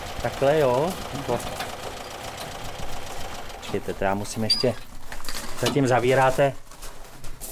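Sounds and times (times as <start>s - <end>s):
car boxer engine with two pairs of opposed cylinders idling: 0.0s - 4.4s
speech: 0.2s - 1.7s, 3.7s - 4.9s, 5.6s - 6.6s.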